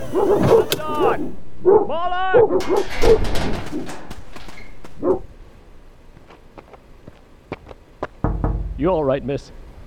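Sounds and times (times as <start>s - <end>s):
speech: 0.1s - 4.0s, 8.8s - 9.6s
dogs barking: 1.6s - 2.9s, 4.9s - 5.3s.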